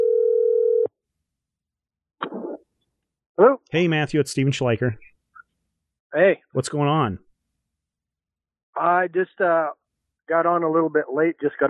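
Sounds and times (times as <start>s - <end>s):
telephone tone of an outgoing call to a mobile phone: 0.0s - 0.9s
speech: 3.4s - 5.1s, 6.1s - 7.2s, 8.8s - 11.6s.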